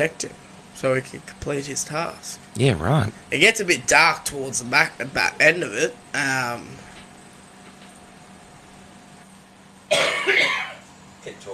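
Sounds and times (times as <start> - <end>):
speech: 0.0 - 6.9
faint vocal noises: 2.4 - 3.4
person coughing while muting the microphone: 9.9 - 10.8.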